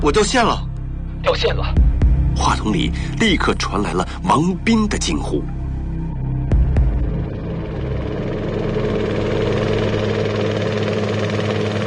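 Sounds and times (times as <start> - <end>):
speech: 0.0 - 1.8, 2.4 - 5.6
helicopter rotor blades spinning with engine hum: 6.5 - 11.8.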